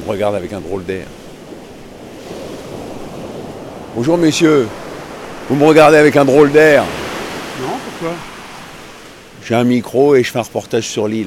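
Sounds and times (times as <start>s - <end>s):
sea waves breaking on a red sandy shore on a small island: 0.0s - 11.2s
speech: 0.1s - 1.2s, 4.0s - 4.8s, 5.5s - 7.0s, 7.6s - 8.3s, 9.4s - 11.2s
wind rushing: 0.8s - 9.5s.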